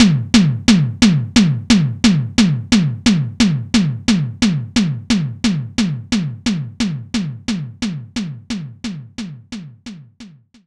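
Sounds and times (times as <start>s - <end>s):
electric tom drum: 0.0s - 10.3s.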